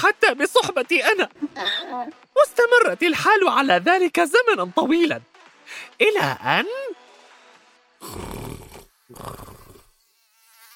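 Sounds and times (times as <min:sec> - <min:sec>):
speech: 0:00.0 - 0:01.4, 0:02.9 - 0:07.0, 0:08.0 - 0:09.6
mosquito buzzing: 0:06.3 - 0:10.7
sleeping man snoring: 0:08.0 - 0:10.0.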